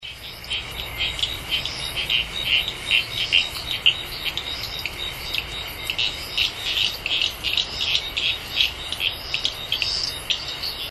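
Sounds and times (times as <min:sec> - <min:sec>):
Guibemantis liber: 0:00.0 - 0:10.8.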